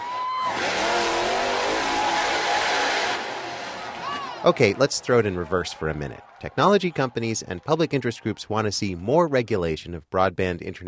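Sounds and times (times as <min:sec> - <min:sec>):
monster truck engine revving with a growling roar: 0:00.4 - 0:04.0
speech: 0:04.4 - 0:10.8.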